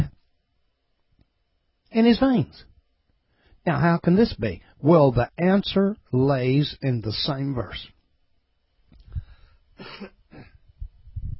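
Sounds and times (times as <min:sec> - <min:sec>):
speech: 0:02.0 - 0:02.7, 0:03.6 - 0:08.0, 0:09.8 - 0:10.5
person clearing throat: 0:09.8 - 0:10.6.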